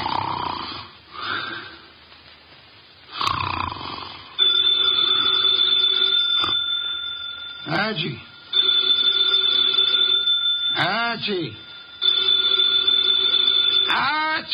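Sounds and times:
man snoring in a chair: 0:00.0 - 0:00.9, 0:03.1 - 0:04.3
old-fashioned desk telephone bell ringing in an office: 0:04.4 - 0:14.4
speech: 0:07.9 - 0:08.3, 0:11.2 - 0:11.7, 0:13.9 - 0:14.5
person calling out: 0:13.9 - 0:14.5.

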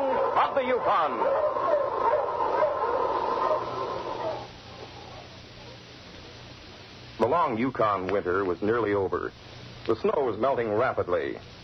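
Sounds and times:
dog barking and yelping: 0:00.0 - 0:05.3
speech: 0:00.5 - 0:01.6, 0:07.3 - 0:11.6.

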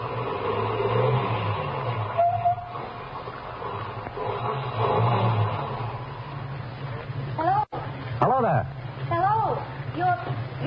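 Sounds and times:
car engine rumbling: 0:00.0 - 0:10.6.

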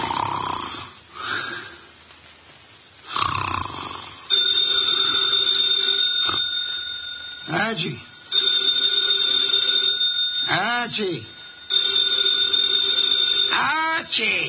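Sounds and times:
person snoring heavily: 0:00.0 - 0:01.8, 0:03.1 - 0:04.3
telephone bell ringing: 0:04.3 - 0:14.4
speech: 0:07.7 - 0:08.1, 0:11.0 - 0:11.4, 0:13.6 - 0:14.4
man calling out: 0:10.5 - 0:11.3, 0:13.5 - 0:14.4.

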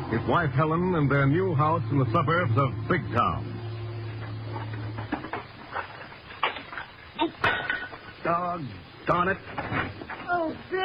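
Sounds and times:
faint low hum: 0:00.0 - 0:10.8
speech: 0:00.1 - 0:03.5, 0:08.3 - 0:10.8
dishes clinking and clattering in a sink while being washed: 0:06.4 - 0:08.2.

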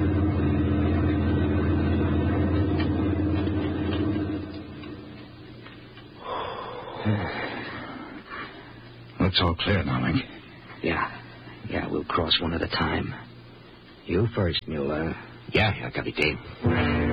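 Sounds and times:
heavy army lorry engine rumbling: 0:00.0 - 0:05.4
tense breathing: 0:06.2 - 0:09.0
speech: 0:09.3 - 0:11.2, 0:12.0 - 0:13.3, 0:14.1 - 0:17.0.

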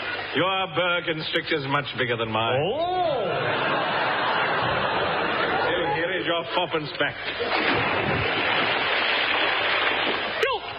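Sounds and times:
speech: 0:00.4 - 0:03.5, 0:06.3 - 0:08.8
laughter: 0:03.1 - 0:06.4
object thrown into water splashing: 0:07.3 - 0:10.5
steady wash of rushing water: 0:07.4 - 0:10.7.

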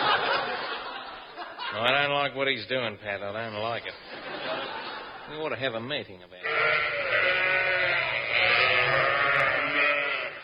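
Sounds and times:
laughter: 0:00.0 - 0:02.1, 0:03.8 - 0:05.4
speech: 0:01.8 - 0:04.5, 0:05.3 - 0:07.3
chorus of sheep bleating: 0:06.4 - 0:10.4.

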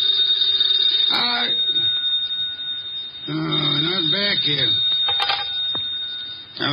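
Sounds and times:
telephone ringing with a shrill bell tone: 0:00.0 - 0:06.7
speech: 0:04.4 - 0:04.9.

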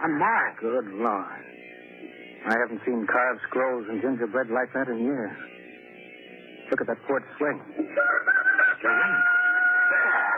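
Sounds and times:
speech: 0:00.1 - 0:01.6, 0:02.4 - 0:05.6, 0:06.7 - 0:09.4
rooster crowing: 0:07.9 - 0:10.3.

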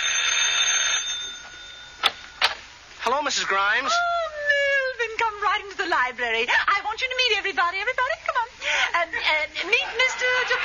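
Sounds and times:
bright buzzing doorbell ringing at a house: 0:00.0 - 0:02.4
speech: 0:03.1 - 0:04.2, 0:05.2 - 0:10.6
laughter: 0:08.8 - 0:10.6.

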